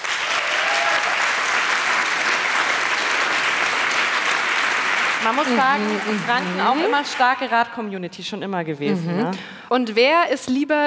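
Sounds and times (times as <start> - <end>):
audience clapping: 0.0 - 7.8
speech: 5.2 - 10.8.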